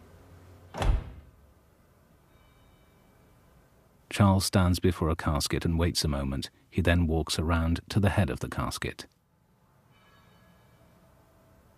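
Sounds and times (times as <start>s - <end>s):
quiet low room hum: 0.0s - 11.7s
brief door rattle: 0.7s - 1.3s
glass door swinging shut with a soft solid thud: 0.7s - 1.4s
speech: 4.2s - 9.2s.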